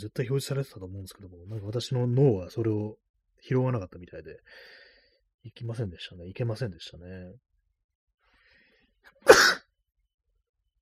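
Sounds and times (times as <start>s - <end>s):
speech: 0.0s - 4.8s, 5.4s - 7.5s
faint breath: 4.4s - 5.3s, 8.2s - 9.2s
person sneezing: 9.2s - 9.7s.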